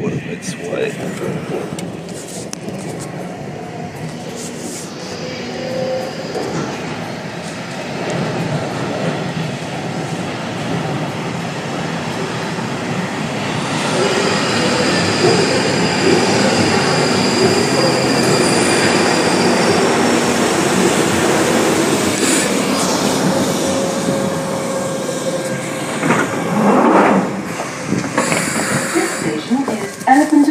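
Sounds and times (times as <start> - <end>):
underground train running through a tunnel: 0.0 - 30.4
speech: 0.3 - 2.0.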